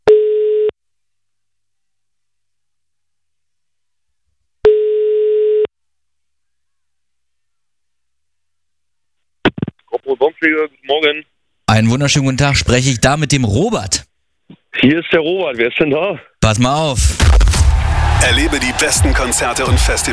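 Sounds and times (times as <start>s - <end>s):
telephone ringing tones as a call is placed: 0.0s - 0.8s, 4.6s - 5.7s
speech: 10.1s - 14.1s, 14.8s - 17.6s, 18.2s - 20.1s.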